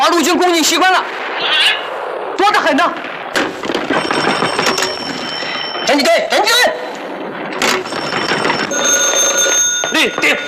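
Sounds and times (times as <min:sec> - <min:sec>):
speech: 0:00.2 - 0:01.8, 0:02.7 - 0:03.1, 0:05.9 - 0:06.9, 0:10.0 - 0:10.4
telephone ringing in a wartime military scene: 0:03.7 - 0:06.1, 0:06.9 - 0:10.4.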